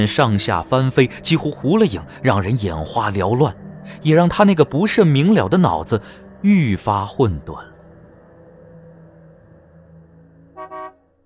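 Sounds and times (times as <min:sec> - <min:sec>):
speech: 0:00.0 - 0:07.7
car horn honking at a village entrance: 0:10.6 - 0:11.1.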